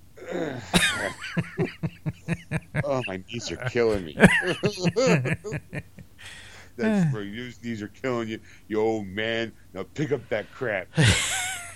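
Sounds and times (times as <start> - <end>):
speech: 0.5 - 1.9, 3.0 - 5.9, 6.8 - 11.5
laughter: 0.7 - 6.1, 11.0 - 11.7
man grunting while bending over: 2.8 - 5.7, 6.8 - 7.2
sharp breathy vocal burst: 6.2 - 7.1.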